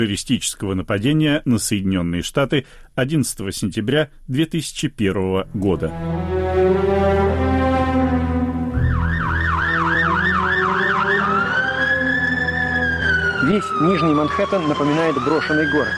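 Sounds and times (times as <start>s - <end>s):
speech: 0.0s - 6.9s, 13.4s - 15.9s
ambulance siren passing: 6.1s - 15.9s.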